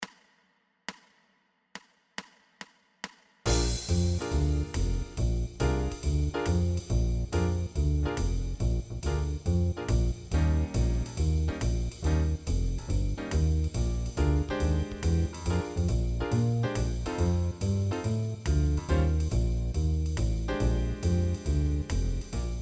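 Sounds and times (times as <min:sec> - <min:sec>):
blues music in B flat: 0:03.5 - 0:22.5.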